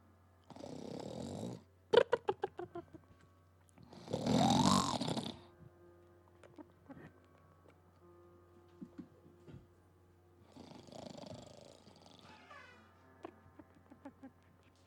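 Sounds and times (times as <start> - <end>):
person snoring: 0.5 - 1.6, 3.9 - 5.5, 10.5 - 12.3
snorting pulses: 3.9 - 5.5, 10.5 - 12.4.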